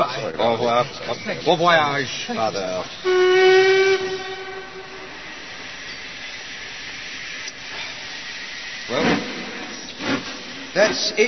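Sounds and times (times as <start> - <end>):
speech: 0.3 - 4.3, 10.8 - 11.2
steam train whistle as the train departs: 3.0 - 5.7.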